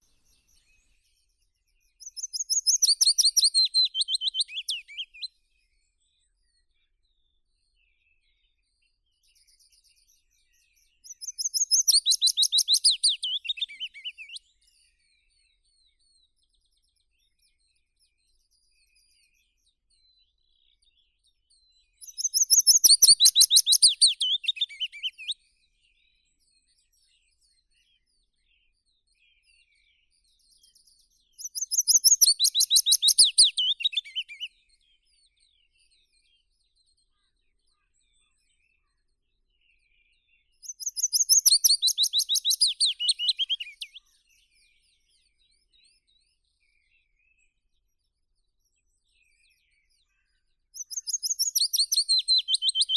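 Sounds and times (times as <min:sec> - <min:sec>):
Phylloscopus trochilus willow warbler singing: 0:02.0 - 0:05.3, 0:11.1 - 0:14.4, 0:22.0 - 0:25.4, 0:31.4 - 0:34.5, 0:40.6 - 0:44.0, 0:50.8 - 0:52.9.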